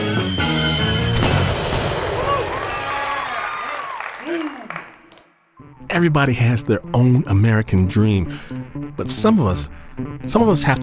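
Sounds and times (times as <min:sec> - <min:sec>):
whistling fireworks rockets: 0:00.0 - 0:04.1
fireworks crackling and booming: 0:01.1 - 0:03.2
crowd murmuring: 0:05.8 - 0:10.8
speech: 0:06.0 - 0:10.8.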